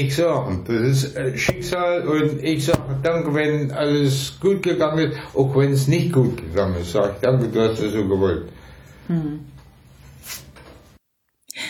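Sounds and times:
speech: 0:00.0 - 0:09.5
hand knocking on a tabletop: 0:02.8 - 0:03.0.

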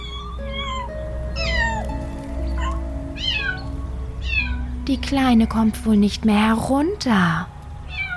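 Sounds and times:
kitten meowing plaintively: 0:00.0 - 0:01.9, 0:02.5 - 0:04.7, 0:07.9 - 0:08.1
low continuous hum: 0:00.0 - 0:08.1
speech: 0:04.9 - 0:07.6.

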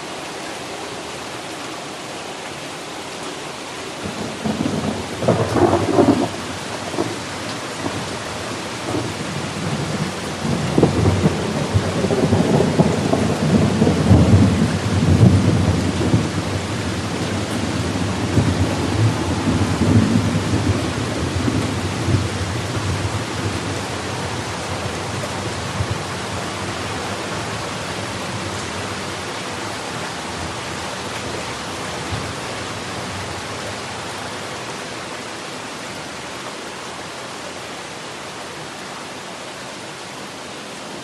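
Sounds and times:
steady rain: 0:00.0 - 0:41.0
long low roll of thunder: 0:04.1 - 0:27.6.

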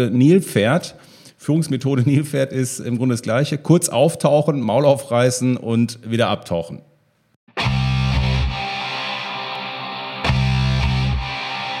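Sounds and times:
speech: 0:00.0 - 0:06.9
loud band music with heavily distorted guitar chords: 0:07.5 - 0:11.7.

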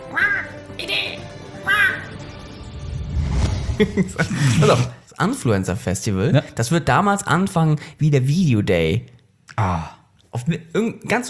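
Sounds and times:
seagulls calling: 0:00.0 - 0:02.4
laughter: 0:03.7 - 0:05.0
speech: 0:03.8 - 0:11.2.

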